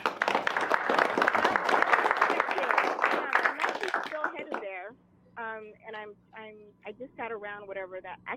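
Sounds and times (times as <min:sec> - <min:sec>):
crowd clapping: 0:00.0 - 0:04.8
speech: 0:06.1 - 0:08.3.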